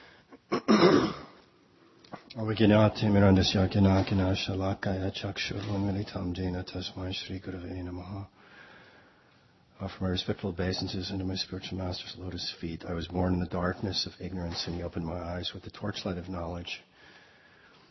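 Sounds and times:
short rough throat-clearing cough: 0.4 - 1.4
speech: 2.4 - 8.4, 9.8 - 16.9.

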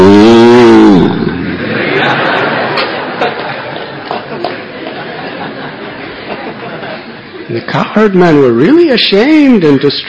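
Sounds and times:
cow mooing: 0.0 - 1.5
laughter: 1.5 - 7.5
speech: 8.0 - 10.0.

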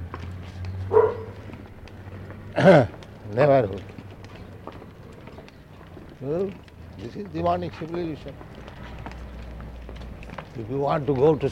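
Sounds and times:
dog barking: 0.9 - 1.4
speech: 2.6 - 4.0, 6.2 - 8.5, 10.6 - 11.5.

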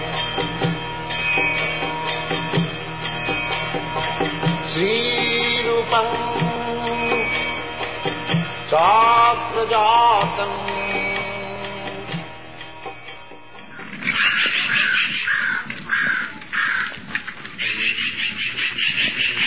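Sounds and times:
sustained tonal drone with wavering harmonics: 0.0 - 13.8
crows cawing in San Francisco, California: 1.1 - 4.0, 13.7 - 19.4.

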